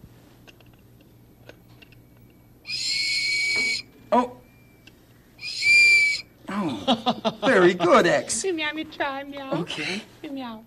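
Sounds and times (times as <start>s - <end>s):
whistle blasts at a museum: 2.6s - 4.8s, 5.4s - 6.3s
speech: 4.2s - 4.4s, 7.0s - 10.6s.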